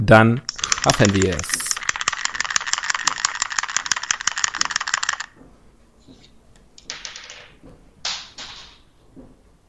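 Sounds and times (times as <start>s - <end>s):
speech: 0.0s - 1.6s
single die rattling as if shaken in a cup: 0.5s - 5.3s.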